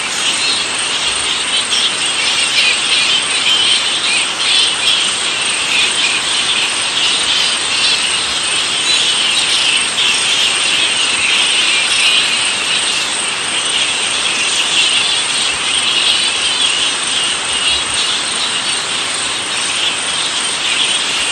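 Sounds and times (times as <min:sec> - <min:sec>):
straw-coloured fruit bat colony squeaking and chittering: 0:00.0 - 0:21.2.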